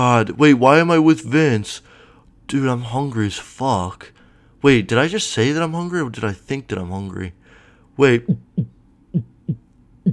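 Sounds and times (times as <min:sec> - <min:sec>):
speech: 0:00.0 - 0:01.9, 0:02.5 - 0:07.4, 0:08.0 - 0:10.1
heartbeat thumping muffled: 0:08.3 - 0:10.1.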